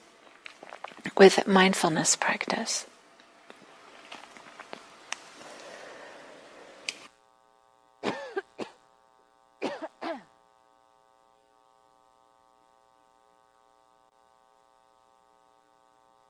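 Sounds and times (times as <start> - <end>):
faint steady hum: 0.0 - 16.2
speech: 1.1 - 2.9
person coughing: 8.0 - 8.8, 9.6 - 10.3
throat clearing: 8.0 - 8.8.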